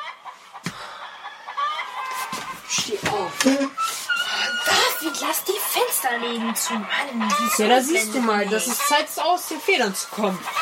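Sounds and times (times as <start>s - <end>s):
rooster crowing: 0.8s - 2.4s, 4.1s - 8.8s
speech: 2.7s - 10.6s.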